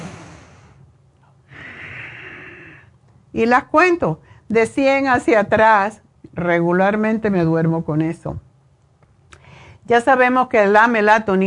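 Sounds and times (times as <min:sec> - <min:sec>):
slow deep belly breathing: 0:00.0 - 0:03.0
speech: 0:03.4 - 0:08.5, 0:09.9 - 0:11.4.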